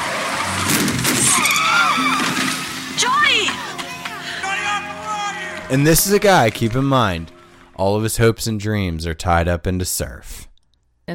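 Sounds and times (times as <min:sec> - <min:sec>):
car tires skidding and squealing as a vehicle turns fast: 0:00.0 - 0:03.7
rumbling road noise: 0:00.0 - 0:07.3
speech: 0:05.7 - 0:10.5.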